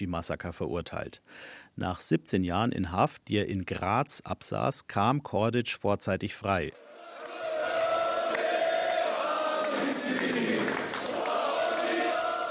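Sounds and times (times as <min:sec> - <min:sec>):
speech: 0:00.0 - 0:07.5
hundreds of supporters cheering in airport terminal: 0:06.7 - 0:12.4
people yelling in crowd: 0:06.8 - 0:12.4.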